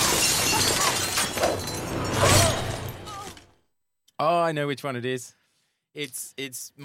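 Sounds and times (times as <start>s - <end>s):
glass shards tinkling and scattering: 0.0s - 3.4s
glass shattering: 0.0s - 3.6s
speech: 4.2s - 6.8s.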